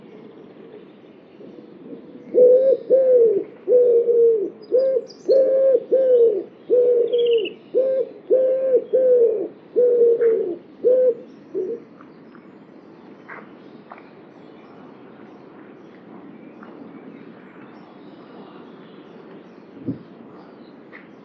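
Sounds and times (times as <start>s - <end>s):
bird cooing: 1.4s - 11.8s.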